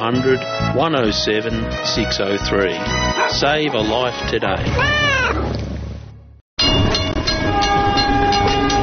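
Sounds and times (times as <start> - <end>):
speech: 0.0 - 5.4
heavy rail rumble: 4.5 - 8.8
train roaring past: 5.4 - 8.8
train horn: 6.9 - 8.8.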